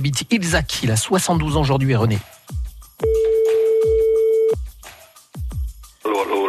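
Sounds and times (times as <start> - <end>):
speech: 0.0 - 2.4
French telephone ringback tone: 3.0 - 4.6.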